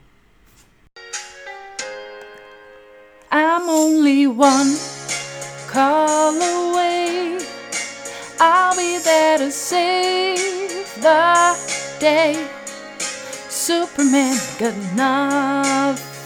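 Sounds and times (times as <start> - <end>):
plain keyboard chords: 1.0 - 16.2
woman singing a pop melody with light vibrato: 3.3 - 16.2
speech: 4.0 - 4.9, 5.7 - 6.7, 9.1 - 12.6, 13.7 - 16.2.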